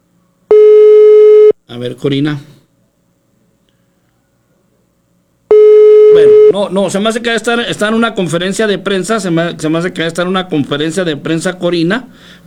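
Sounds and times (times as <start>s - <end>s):
telephone line tone while dialing a call: 0.5s - 1.6s, 5.5s - 6.6s
speech: 1.7s - 2.5s, 6.6s - 12.4s.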